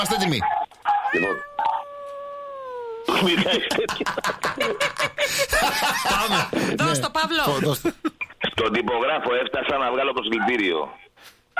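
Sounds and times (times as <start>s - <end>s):
speech: 0.0s - 1.5s, 3.2s - 11.5s
dog howling: 0.9s - 3.1s
laughter: 3.1s - 6.6s.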